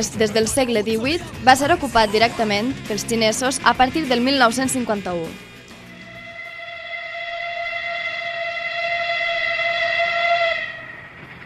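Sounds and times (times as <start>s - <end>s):
speech: 0.0s - 5.5s
moving train rumbling on railway: 0.0s - 11.4s
train whistle blowing: 5.8s - 11.4s.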